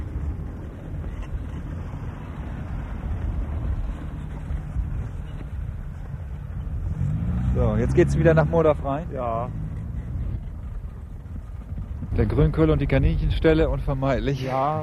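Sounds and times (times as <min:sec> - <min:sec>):
car driving past with road and engine rumble: 0:01.8 - 0:10.8
speech: 0:07.8 - 0:09.6, 0:12.2 - 0:14.8.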